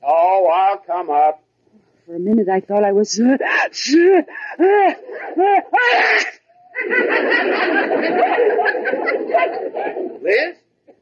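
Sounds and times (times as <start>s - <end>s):
speech: 0.5s - 1.4s, 2.1s - 10.6s
laughter: 4.0s - 10.5s
person sneezing inside a closet: 5.8s - 6.4s
noisy jumble of voices or commotion: 7.8s - 10.6s.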